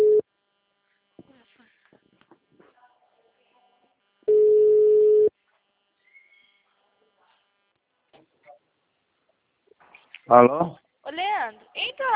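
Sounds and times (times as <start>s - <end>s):
single-pitch telephone ringback tone of an outgoing call: 0.0s - 0.2s, 4.3s - 5.3s
speech: 10.3s - 10.8s.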